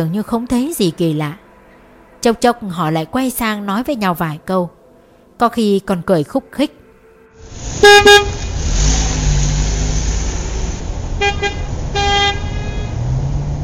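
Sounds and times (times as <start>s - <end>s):
speech: 0.0s - 1.4s, 2.2s - 4.8s, 5.4s - 6.8s, 7.4s - 8.4s
car horns honking in street traffic at a green light: 6.9s - 9.3s, 11.1s - 13.2s
low engine rumble of street traffic: 7.4s - 13.6s.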